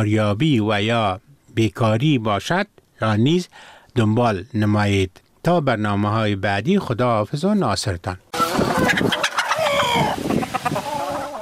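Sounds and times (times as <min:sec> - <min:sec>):
speech: 0:00.0 - 0:08.2, 0:08.8 - 0:09.2
many chickens clucking and squawking: 0:08.3 - 0:11.4.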